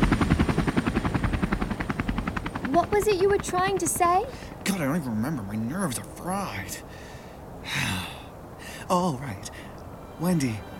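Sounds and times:
police helicopter rotor blades thumping passing overhead: 0.0 - 5.2
police helicopter engine roar: 0.0 - 6.2
speech: 2.8 - 7.0, 7.7 - 7.9, 8.9 - 9.6, 10.2 - 10.7.

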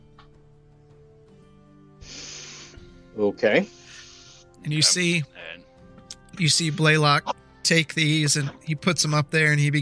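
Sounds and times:
sharp inhale through the nose: 2.0 - 3.0, 3.7 - 4.6
speech: 3.2 - 3.8, 4.6 - 5.6, 6.4 - 9.7.

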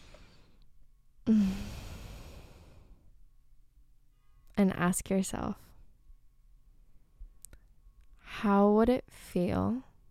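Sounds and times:
deep breath let out as a sigh-like exhale: 0.0 - 0.6, 1.3 - 3.1
speech: 4.6 - 5.6, 8.4 - 9.9.

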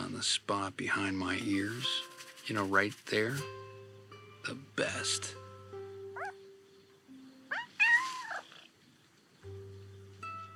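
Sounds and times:
speech: 0.2 - 3.6, 4.4 - 5.4
cat being coaxed meowing: 6.2 - 6.4, 7.5 - 8.6.

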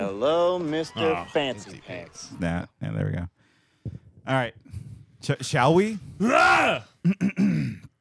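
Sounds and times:
speech: 0.2 - 7.9
person clearing throat: 7.0 - 7.9.

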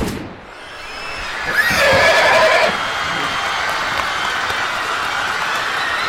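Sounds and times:
crowd noise and commotion outside the United States Embassy: 0.4 - 6.0
frightened cavalry horse whinnying: 1.4 - 2.8.

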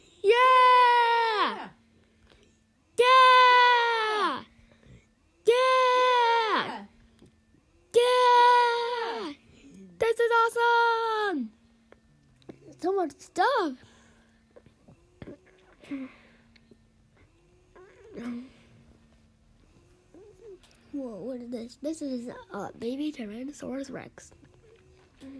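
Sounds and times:
faint noise: 0.0 - 25.3
child yelling at full volume: 0.2 - 1.8, 3.0 - 4.5, 5.5 - 6.9, 7.9 - 9.4
speech: 13.0 - 13.9, 21.8 - 24.4.

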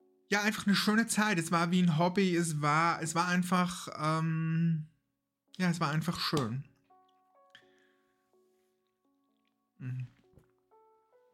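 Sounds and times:
speech: 0.3 - 4.9, 5.6 - 6.7, 9.8 - 10.1
person sipping water: 9.4 - 10.6.

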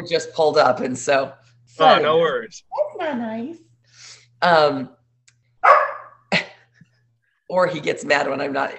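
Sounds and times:
speech: 0.0 - 3.6, 4.4 - 5.0, 7.5 - 8.7
dog barking: 5.6 - 6.2.

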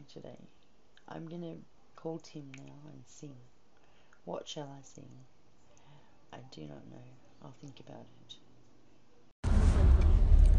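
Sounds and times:
speech: 0.1 - 3.6, 4.2 - 5.4, 6.3 - 8.4
road and engine noise inside a moving car: 9.5 - 10.5.

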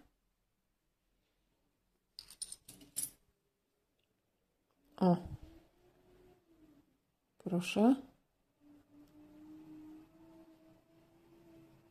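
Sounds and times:
Austrian shilling coins of 900 fineness clinking and rattling: 2.2 - 3.2
speech: 5.0 - 5.3, 7.5 - 8.1.

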